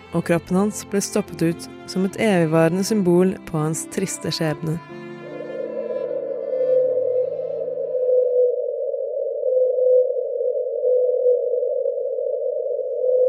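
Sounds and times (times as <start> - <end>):
speech: 0.1 - 5.0
whale song at 52 Hz: 4.9 - 13.2.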